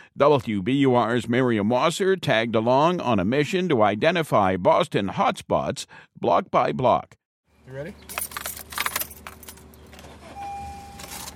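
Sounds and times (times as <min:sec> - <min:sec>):
speech: 0:00.2 - 0:08.3
low hum with a thin steady tone: 0:07.6 - 0:11.3
keys jingling and rattling: 0:08.1 - 0:09.8.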